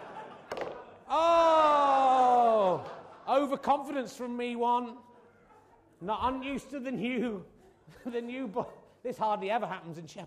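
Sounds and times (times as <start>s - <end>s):
laughter: 0.0s - 4.2s, 5.0s - 9.2s
ball flying off table and clattering onto floor: 0.5s - 0.8s
speech: 1.1s - 1.5s, 3.4s - 5.1s, 6.0s - 10.2s
loud drawn-out vocal exclamation: 1.1s - 2.8s.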